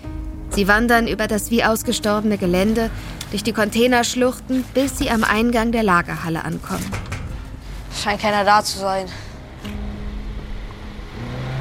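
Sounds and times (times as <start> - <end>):
speech: 0.6 - 7.1, 8.0 - 9.8
red pickup truck engine revving hard near a warehouse: 9.4 - 11.5.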